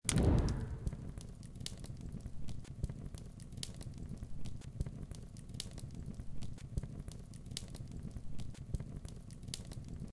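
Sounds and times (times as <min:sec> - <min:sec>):
fire: 0:00.0 - 0:10.1.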